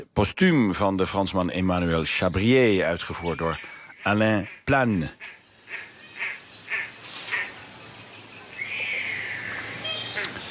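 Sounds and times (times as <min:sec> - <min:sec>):
speech: 0:00.1 - 0:05.9
great crested grebe calling, New Zealand bird: 0:03.0 - 0:10.4.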